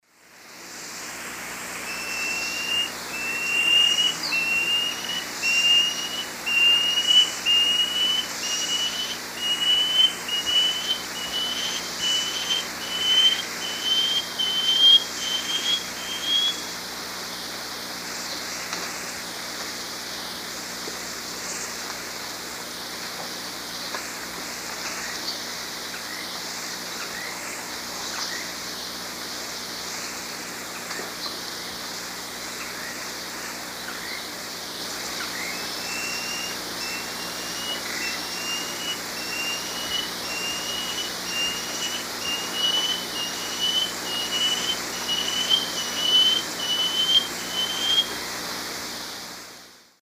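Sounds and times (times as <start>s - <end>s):
Dichrozona cincta song in South American eastern lowlands: 1.8s - 16.7s, 34.9s - 48.2s.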